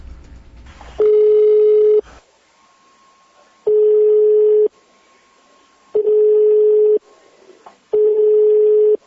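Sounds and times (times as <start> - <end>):
telephone ringback tone of an unanswered call: 1.0 - 2.0, 3.7 - 4.7, 5.9 - 7.0, 7.9 - 9.0.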